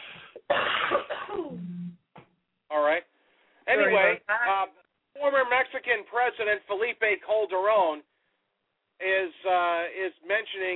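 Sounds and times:
person coughing: 0:00.1 - 0:01.5
speech: 0:03.8 - 0:08.1, 0:09.0 - 0:10.7.

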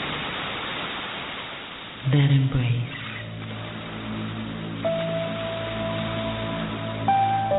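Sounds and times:
steady rain falling: 0:00.0 - 0:07.5
speech: 0:02.0 - 0:03.0.

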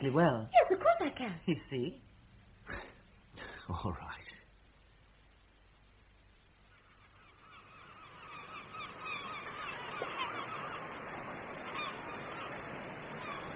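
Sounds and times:
speech: 0:00.0 - 0:02.1, 0:02.7 - 0:04.2
large flock of geese honking: 0:06.7 - 0:13.5.

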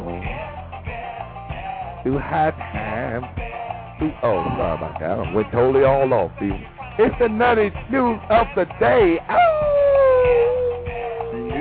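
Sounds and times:
speech: 0:02.0 - 0:03.4, 0:04.0 - 0:09.4
dog howling: 0:09.3 - 0:11.5.

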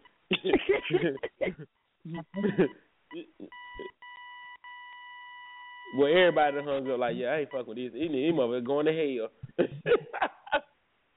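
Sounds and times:
laughter: 0:00.3 - 0:01.6, 0:02.4 - 0:02.8, 0:09.4 - 0:10.6
speech: 0:00.4 - 0:02.9, 0:05.9 - 0:10.4
little electronic beeps: 0:02.2 - 0:07.8.

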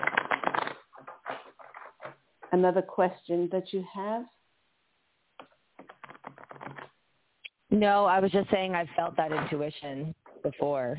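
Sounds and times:
deck of cards being shuffled: 0:00.0 - 0:02.5, 0:05.4 - 0:07.0
speech: 0:02.5 - 0:04.4, 0:07.8 - 0:10.9.

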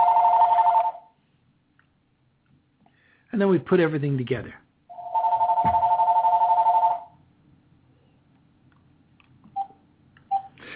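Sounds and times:
electronic telephone ringing: 0:00.0 - 0:01.1, 0:04.9 - 0:07.2
speech: 0:03.3 - 0:04.6.

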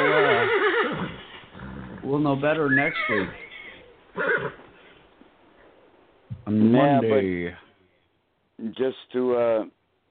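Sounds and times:
horse whinny: 0:00.0 - 0:04.7
speech: 0:02.1 - 0:03.4, 0:04.2 - 0:04.6, 0:06.5 - 0:07.6, 0:08.6 - 0:09.8.

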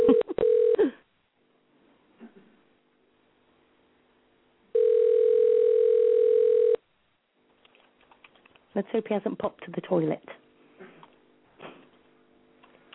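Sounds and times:
loud steady telephone tone: 0:00.0 - 0:00.9, 0:04.7 - 0:06.8
telephone touch-tone dialing beeps: 0:04.8 - 0:06.8
speech: 0:08.8 - 0:10.4.

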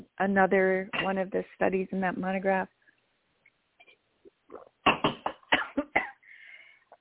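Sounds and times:
speech: 0:00.2 - 0:02.8
throat sounds: 0:04.3 - 0:05.5
person coughing mid-interview: 0:04.9 - 0:06.2
raspy breath: 0:06.2 - 0:06.9.

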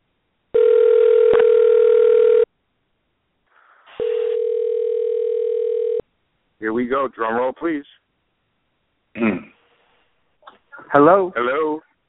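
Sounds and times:
telephone line tones as a call is placed: 0:00.6 - 0:02.5, 0:04.0 - 0:06.0
speech: 0:06.9 - 0:08.0, 0:10.9 - 0:11.8.

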